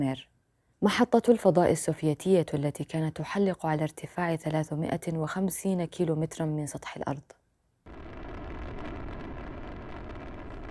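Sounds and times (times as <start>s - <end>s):
speech: 0.0s - 7.4s
rocket engine roar at launch from a launch pad in Kazakhstan: 7.9s - 10.6s.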